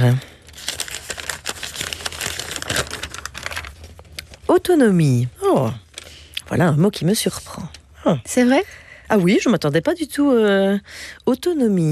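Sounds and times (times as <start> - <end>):
speech: 0.0 - 0.3, 4.5 - 5.8, 6.5 - 11.8
small paper slip being picked up and unfolded, crinkling and rustling: 0.0 - 4.7.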